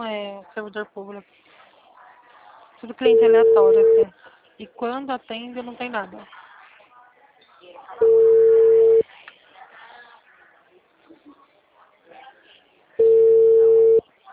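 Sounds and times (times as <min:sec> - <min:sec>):
speech: 0:00.0 - 0:01.6, 0:02.8 - 0:06.4
telephone ringback tone on an outgoing phone call: 0:03.1 - 0:04.1, 0:08.0 - 0:09.0, 0:13.0 - 0:14.0.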